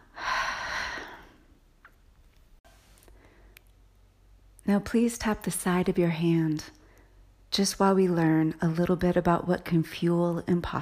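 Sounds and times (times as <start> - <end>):
slow breath drawn in and let out: 0.0 - 1.5
speech: 4.7 - 6.8, 7.5 - 10.8.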